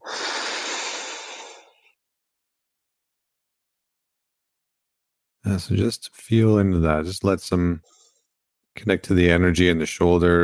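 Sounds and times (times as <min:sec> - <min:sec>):
one long breath: 0:00.0 - 0:02.0, 0:07.8 - 0:08.4
speech: 0:05.4 - 0:08.0, 0:08.8 - 0:10.4.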